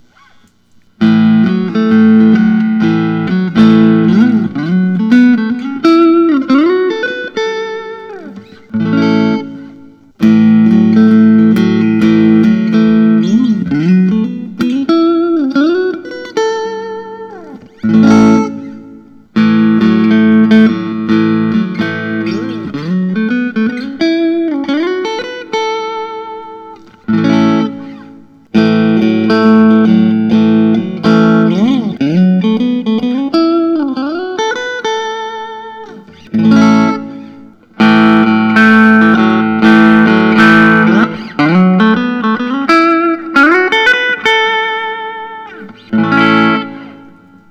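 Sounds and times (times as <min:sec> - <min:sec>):
guitars playing in a natural style: 0:00.0 - 0:47.4.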